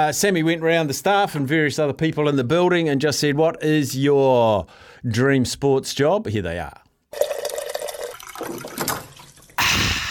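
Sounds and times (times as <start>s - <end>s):
speech: 0.0s - 7.3s
water cooler filling with water: 7.2s - 9.7s.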